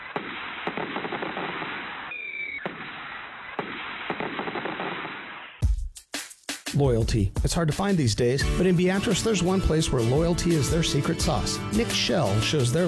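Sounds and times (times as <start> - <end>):
fireworks exploding: 0.0 - 5.6
speech: 6.8 - 12.8.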